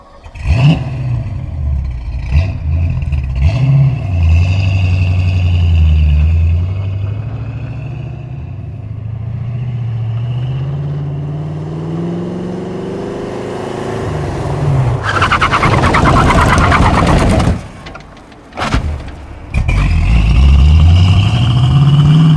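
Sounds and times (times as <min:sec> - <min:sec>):
Ford Maverick car engine revving: 0:00.0 - 0:17.7, 0:19.5 - 0:22.3
Ford Maverick with broken axle mount chattering skid when braking: 0:15.0 - 0:19.8.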